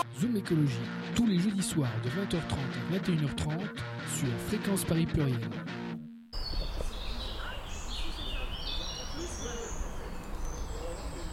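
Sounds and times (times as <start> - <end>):
speech: 0.0 - 5.8
birds chirping outdoors: 6.4 - 11.3.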